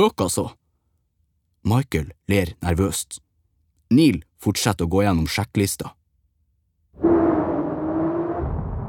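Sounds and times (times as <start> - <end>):
speech: 0.0 - 0.6, 1.6 - 3.2, 3.9 - 6.0
rocket engine igniting and roaring: 7.0 - 8.8.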